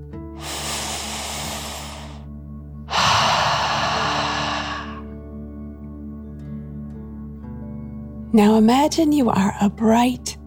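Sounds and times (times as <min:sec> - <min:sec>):
slow deep breath in through the nose: 0:00.3 - 0:02.3, 0:02.9 - 0:05.1
speech: 0:08.3 - 0:10.4.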